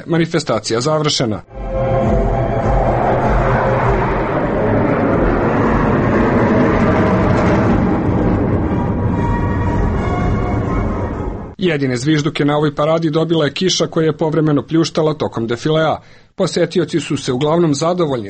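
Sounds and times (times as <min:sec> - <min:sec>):
speech: 0:00.0 - 0:02.0, 0:11.6 - 0:18.2
MiG-29 jet fighters of a Russian aerobatic team passing overhead at a military parade: 0:01.5 - 0:11.6.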